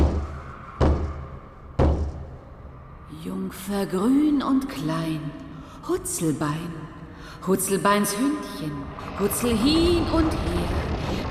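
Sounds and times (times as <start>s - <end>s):
heavy knocks on a thick wooden door: 0.0s - 2.3s
speech: 3.2s - 11.2s.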